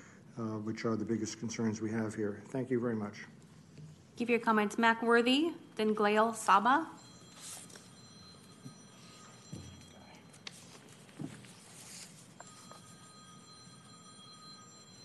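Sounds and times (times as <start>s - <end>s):
speech: 0.4s - 3.4s, 4.2s - 7.0s
mobile phone ringing in council chambers: 6.8s - 15.0s
shuffling: 7.3s - 13.1s.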